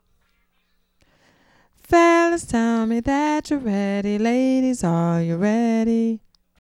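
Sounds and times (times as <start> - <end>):
epic diva vocals: 1.8 - 6.3.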